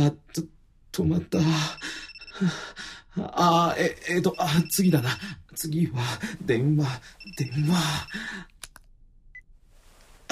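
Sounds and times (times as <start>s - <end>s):
speech: 0.0s - 8.5s
telephone ringing in short electronic bursts: 1.6s - 2.4s, 4.1s - 5.4s
sharp clicks: 8.5s - 8.9s.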